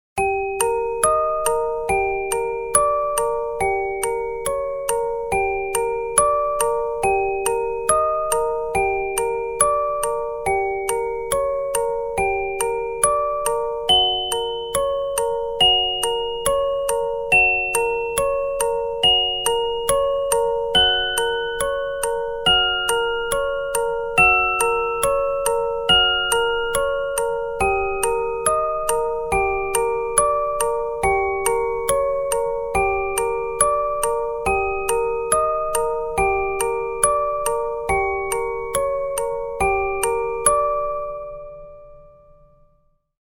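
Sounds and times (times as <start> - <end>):
creepy music box: 0.2 - 43.1.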